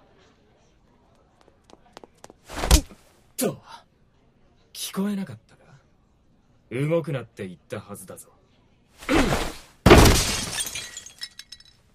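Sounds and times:
speech: 3.4s - 3.6s, 5.0s - 5.4s, 6.7s - 8.4s
bottle of rosé wine shattering: 9.9s - 11.9s
small glass shards tinkling and clinking: 10.3s - 11.8s.

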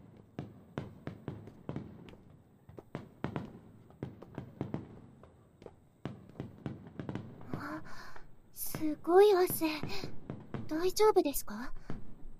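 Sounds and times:
heavy footsteps of a person hurrying up a flight of stairs: 0.9s - 6.6s
speech: 8.8s - 10.2s, 10.7s - 11.8s.

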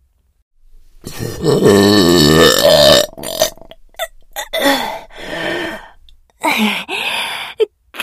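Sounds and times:
guttural belches: 1.0s - 5.1s
loud deep burp: 1.1s - 6.0s
gasping breaths: 4.0s - 7.6s.

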